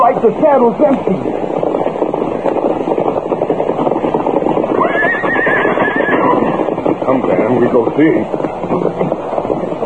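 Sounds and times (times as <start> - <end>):
speech: 0.0 - 2.2, 7.1 - 8.9
loud continuous hoofbeats: 0.0 - 9.8
horse whinnying in a long quavering call: 4.7 - 6.8.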